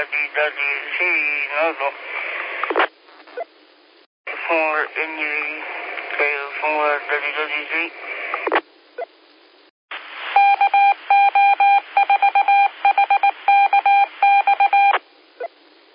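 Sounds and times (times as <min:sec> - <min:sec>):
speech: 0:00.0 - 0:02.2, 0:04.5 - 0:08.6
radio static and clicks: 0:00.0 - 0:03.5, 0:04.3 - 0:08.7
Morse code CW radio call tones: 0:10.4 - 0:15.0.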